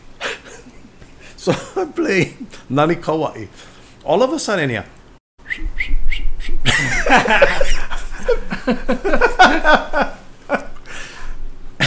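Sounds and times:
speech: 0:01.4 - 0:05.0, 0:07.1 - 0:07.8, 0:08.7 - 0:10.1
person whistling a tune after a concert: 0:05.4 - 0:06.6
laughter: 0:06.6 - 0:10.8.

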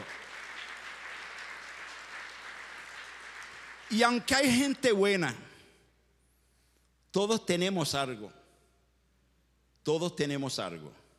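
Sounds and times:
audience applauding: 0:00.0 - 0:04.6
speech: 0:03.9 - 0:05.4, 0:07.1 - 0:08.4, 0:09.8 - 0:11.0.

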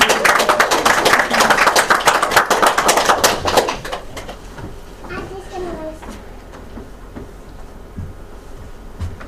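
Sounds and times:
audience applause: 0:00.0 - 0:04.5.

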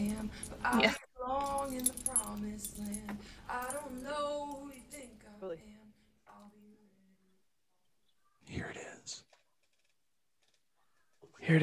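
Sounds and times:
car keys jangling: 0:00.0 - 0:05.2
speech: 0:00.2 - 0:01.1, 0:11.4 - 0:11.6.

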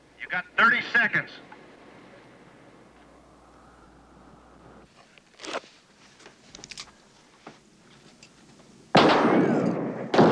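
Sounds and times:
speech: 0:00.3 - 0:01.5
gunfire in a battle scene: 0:08.9 - 0:10.2.

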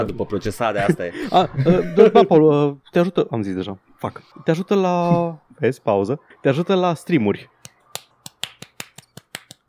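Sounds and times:
speech: 0:00.0 - 0:07.6
laughter: 0:00.4 - 0:03.2
crisp finger snaps: 0:07.6 - 0:09.6.

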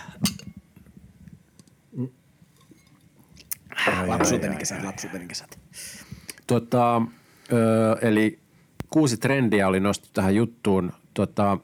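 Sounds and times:
beer glasses clinking: 0:00.2 - 0:00.6, 0:03.8 - 0:04.8
speech: 0:02.0 - 0:02.2, 0:03.9 - 0:11.6.

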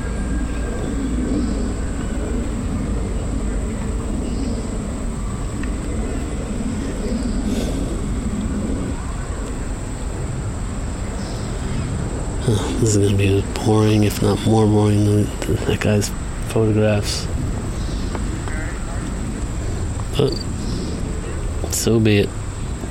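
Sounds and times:
jet aircraft flying high overhead: 0:00.0 - 0:22.8
speech: 0:12.8 - 0:17.3, 0:20.2 - 0:20.5, 0:21.8 - 0:22.4.

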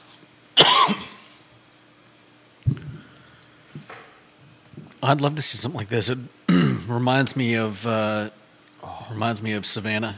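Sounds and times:
person with a scratchy throat clearing throat: 0:00.6 - 0:01.2, 0:06.5 - 0:06.9
person with a scratchy throat coughing: 0:00.6 - 0:01.2, 0:06.5 - 0:06.9
speech: 0:05.0 - 0:08.4, 0:09.1 - 0:10.1.

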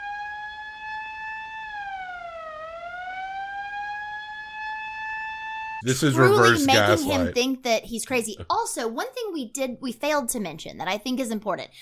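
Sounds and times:
police siren wailing: 0:00.0 - 0:06.9
laughter: 0:05.8 - 0:07.4
speech: 0:05.8 - 0:11.8.

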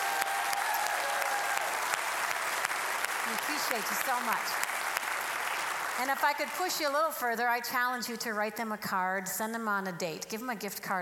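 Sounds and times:
church congregation applauding: 0:00.0 - 0:06.9
speech: 0:03.3 - 0:04.8, 0:06.0 - 0:10.9.

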